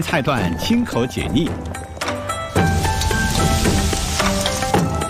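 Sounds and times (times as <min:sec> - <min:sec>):
speech: 0:00.0 - 0:01.8
rice cakes with sea anemone meat, bamboo shoots, shiitake and mustard greens sizzling in a hot wok: 0:02.5 - 0:05.0.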